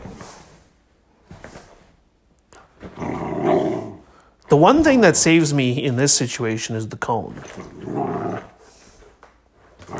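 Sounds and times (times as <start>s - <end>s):
dog growling and barking: 2.8s - 4.1s, 7.6s - 8.6s, 9.8s - 9.9s
speech: 4.5s - 8.4s.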